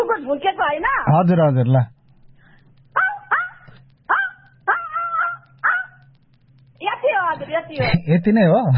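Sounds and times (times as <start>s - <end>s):
low steady hum: 0.0s - 8.7s
speech: 0.1s - 2.0s, 7.5s - 8.7s
person imitating a dog barking: 3.0s - 6.0s.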